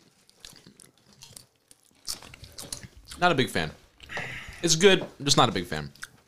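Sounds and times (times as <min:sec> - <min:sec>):
crunching potato chips: 0:00.0 - 0:03.3
speech: 0:03.2 - 0:03.8, 0:04.6 - 0:06.0.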